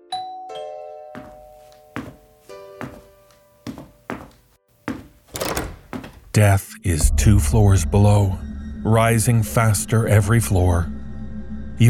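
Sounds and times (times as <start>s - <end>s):
doorbell chiming: 0.1s - 2.8s
repeated thuds or knocks: 5.3s - 6.3s
speech: 6.4s - 11.0s.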